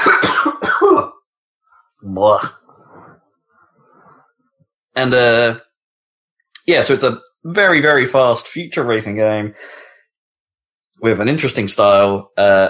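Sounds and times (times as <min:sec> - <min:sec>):
person coughing in loud rough bursts: 0:00.0 - 0:01.2
speech: 0:02.2 - 0:02.6, 0:05.0 - 0:05.7, 0:06.7 - 0:09.9, 0:11.0 - 0:12.6.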